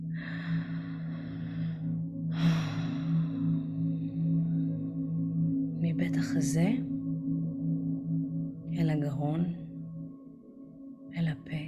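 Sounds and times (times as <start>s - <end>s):
slow deep breathing: 0.0s - 5.8s
steady low drone: 0.0s - 11.6s
speech: 6.2s - 7.0s, 9.1s - 9.6s.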